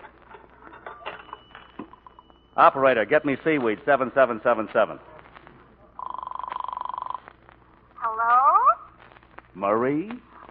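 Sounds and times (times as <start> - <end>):
telephone ringing on the other end of the line: 1.0 - 3.0, 6.0 - 7.4
speech: 2.6 - 5.1, 9.6 - 10.3.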